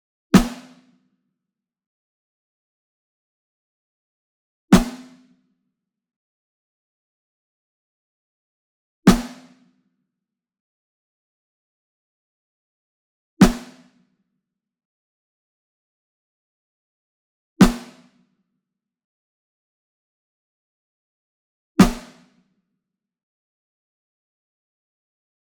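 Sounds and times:
single Ludwig Black Beauty snare drum hit, near: 0.4s - 0.7s, 4.8s - 5.1s, 9.1s - 9.5s, 13.4s - 13.8s, 17.6s - 18.0s, 21.8s - 22.2s.

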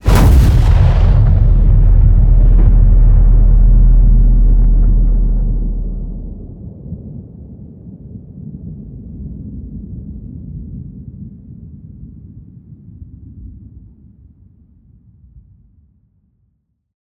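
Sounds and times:
designed cinematic fire hit: 0.0s - 6.8s.

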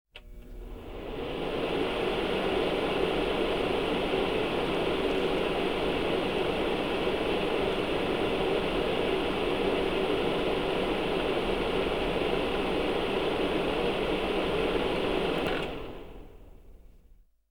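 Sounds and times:
electric fan: 0.1s - 17.2s.

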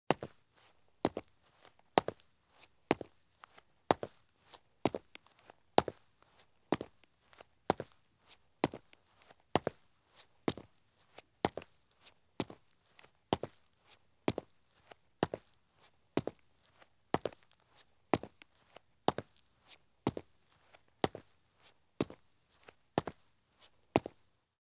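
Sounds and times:
heavy running shoes walking at medium pace on concrete: 0.1s - 8.0s, 8.6s - 9.8s, 10.5s - 10.7s, 11.4s - 11.7s, 12.4s - 12.6s, 14.3s - 15.5s, 16.2s - 21.3s, 22.0s - 24.2s.

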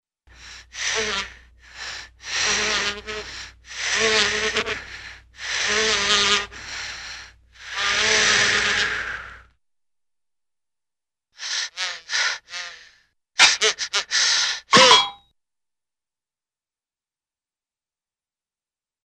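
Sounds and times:
funny cartoon fly breaths: 0.3s - 9.5s, 11.4s - 14.8s.

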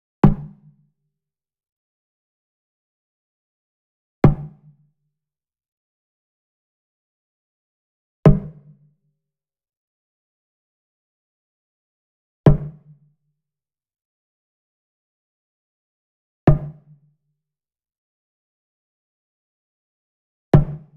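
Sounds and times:
mounted wood drum hit with beater: 0.2s - 0.6s, 4.2s - 4.7s, 8.3s - 8.6s, 12.5s - 12.9s, 16.5s - 16.8s, 20.6s - 20.9s.

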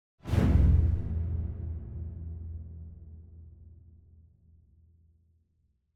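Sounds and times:
symphonic hit with bass and strings: 0.2s - 3.4s.

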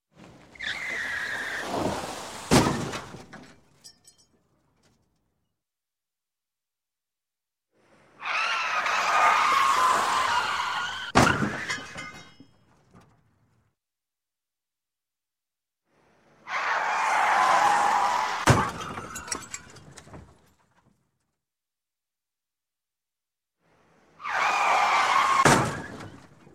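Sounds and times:
car tires skidding: 0.2s - 2.5s, 7.8s - 11.7s, 16.0s - 19.7s, 23.7s - 26.4s.

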